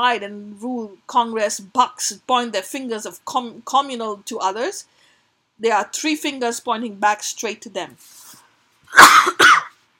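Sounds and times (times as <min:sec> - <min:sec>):
speech: 0:00.0 - 0:05.0, 0:05.6 - 0:08.2
harsh coughs: 0:08.9 - 0:09.8.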